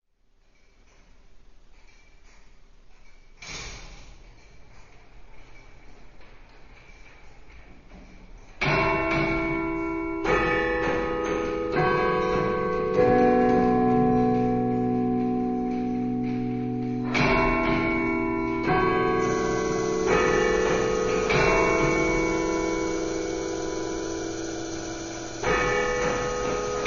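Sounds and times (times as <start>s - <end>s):
courthouse bells: 8.6s - 26.8s.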